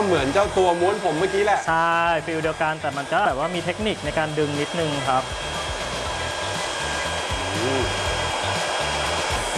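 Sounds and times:
speech: 0.0s - 5.6s, 7.6s - 8.0s
high-power hair dryer blowing on hair during styling: 0.0s - 9.5s.

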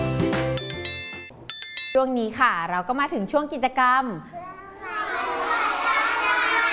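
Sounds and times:
speech: 2.0s - 4.6s
group of children shouting and cheering: 4.4s - 6.7s.

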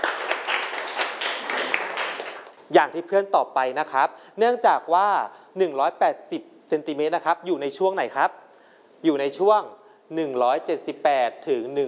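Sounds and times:
classroom applause for a student: 0.0s - 2.6s
speech: 2.7s - 8.4s, 9.0s - 11.8s.

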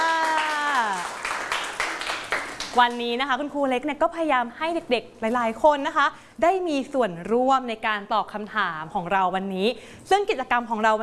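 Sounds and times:
children clapping for a classmate in a classroom: 0.0s - 3.0s
speech: 2.8s - 11.0s.

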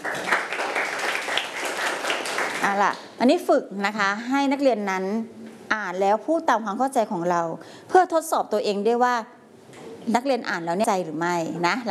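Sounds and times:
students clapping in a classroom: 0.0s - 3.1s
speech: 2.6s - 9.4s, 10.0s - 11.8s.

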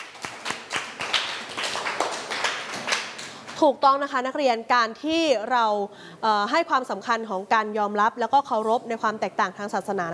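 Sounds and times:
group of students clapping in a steady quick rhythm: 0.0s - 3.6s
speech: 3.6s - 10.1s.

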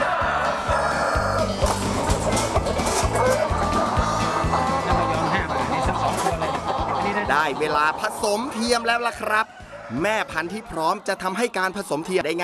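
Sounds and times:
chickens clucking and squawking during handling: 0.0s - 12.4s
steady rhythmic low beat: 1.4s - 8.6s
laughter: 1.8s - 12.0s
speech: 7.4s - 12.4s.

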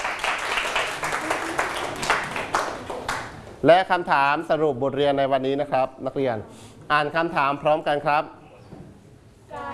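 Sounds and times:
students clapping in a classroom: 0.0s - 3.5s
speech: 3.6s - 8.4s.

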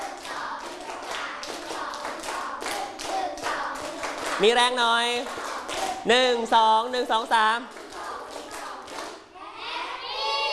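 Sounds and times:
class of children clapping a rhythmic pattern: 0.0s - 9.3s
speech: 4.4s - 5.4s, 6.0s - 7.8s.

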